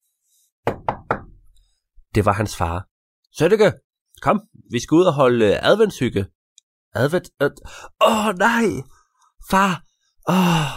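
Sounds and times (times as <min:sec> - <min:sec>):
firm knocking on a door: 0:00.6 - 0:01.4
speech: 0:02.1 - 0:10.7.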